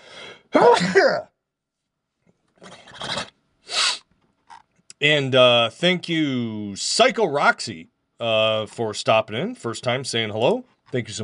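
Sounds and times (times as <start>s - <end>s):
loud human sneeze: 0.5s - 1.2s, 3.7s - 4.1s
speech: 0.8s - 1.3s, 5.0s - 11.2s
shorter sniffs or breathy aftersounds after a sneeze: 2.6s - 4.1s.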